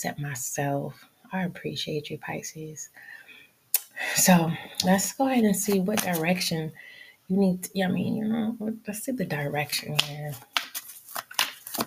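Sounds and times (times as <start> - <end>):
speech: 0.0 - 3.2, 4.0 - 10.5
tarot cards being shuffled: 5.6 - 6.4, 9.8 - 11.8.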